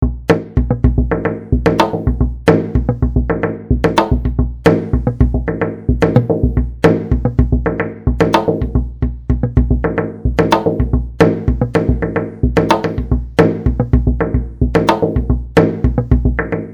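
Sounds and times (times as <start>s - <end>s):
rhythm: 0.0s - 16.7s.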